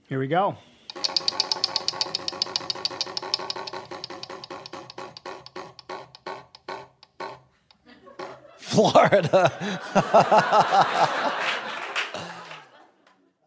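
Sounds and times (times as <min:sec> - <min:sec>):
speech: 0:00.1 - 0:00.8, 0:08.8 - 0:11.2
game show prize wheel spinning and ratcheting: 0:00.9 - 0:07.2
laughter: 0:07.8 - 0:13.4.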